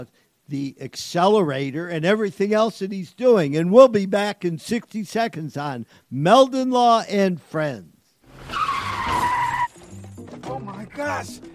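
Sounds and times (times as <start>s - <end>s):
speech: 0.0s - 8.6s, 10.5s - 11.5s
car colliding with truck: 8.3s - 9.7s
car tire screech as car skids: 8.3s - 9.8s.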